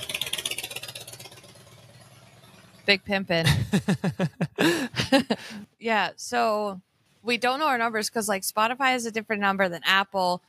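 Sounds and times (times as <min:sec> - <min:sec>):
Harley-Davidson motorcycle engine rumbling: 0:00.0 - 0:05.1
speech: 0:02.9 - 0:10.4
laughter: 0:03.4 - 0:05.6.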